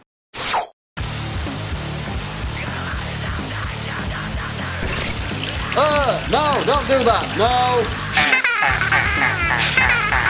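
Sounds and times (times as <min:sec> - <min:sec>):
low rhythmic music bed: 0:01.6 - 0:10.2
liquid pouring: 0:04.8 - 0:08.4
speech: 0:06.3 - 0:08.0
laughter: 0:08.0 - 0:10.2.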